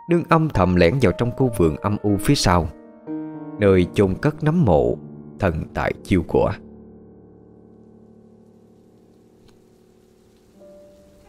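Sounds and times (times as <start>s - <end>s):
speech: 0.1s - 2.8s, 3.6s - 6.6s
light spring drizzle falling at night: 7.3s - 11.2s.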